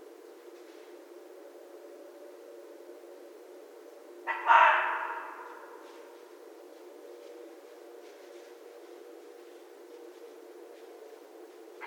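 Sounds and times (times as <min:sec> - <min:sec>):
red fox giving a harsh hoarse bark: 0:04.2 - 0:05.8.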